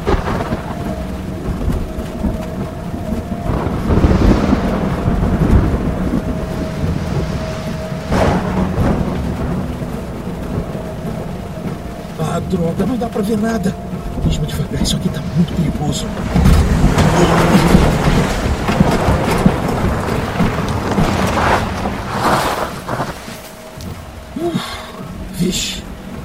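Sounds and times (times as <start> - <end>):
deep rolling thunder: 0.0 - 26.2
steady dense rain over a dirt road through a forest: 0.0 - 26.2
speech: 12.5 - 19.2, 25.5 - 25.8.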